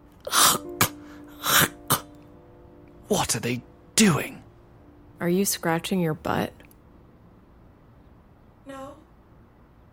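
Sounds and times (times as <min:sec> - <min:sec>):
faint steady hum: 0:00.0 - 0:09.9
person forcing coughs to clear the throat: 0:00.3 - 0:02.2
speech: 0:03.1 - 0:04.5, 0:05.2 - 0:06.6.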